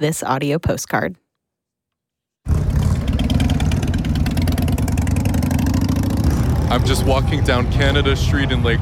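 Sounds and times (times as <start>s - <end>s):
speech: 0.0s - 1.2s, 6.7s - 8.8s
motorcycle engine starting and rumbling: 2.5s - 8.8s.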